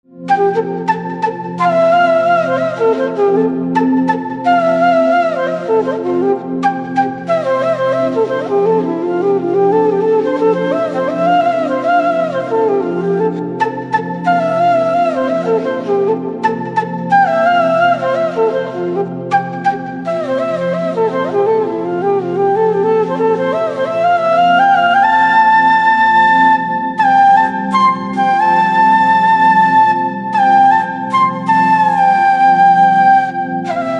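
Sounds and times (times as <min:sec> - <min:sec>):
flute background music for a movie: 0:00.0 - 0:33.9.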